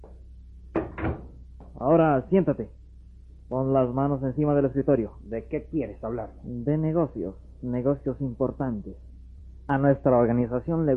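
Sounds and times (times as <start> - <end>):
room hum: 0.0 - 10.9
door latch clunk: 0.8 - 1.3
speech: 1.8 - 2.8, 3.5 - 9.1, 9.7 - 10.9.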